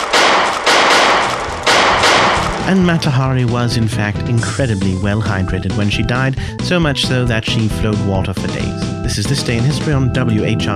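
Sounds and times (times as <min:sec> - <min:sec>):
gunshots from a firing-squad execution of a female spy: 0:00.0 - 0:03.6
speech: 0:02.7 - 0:10.7.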